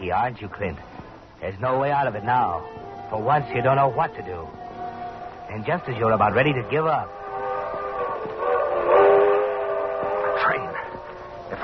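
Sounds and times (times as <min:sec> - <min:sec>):
speech: 0:00.0 - 0:04.6, 0:05.5 - 0:07.2
train rumbling past: 0:00.0 - 0:11.6
train whistle in long chord-like blasts: 0:02.0 - 0:11.6.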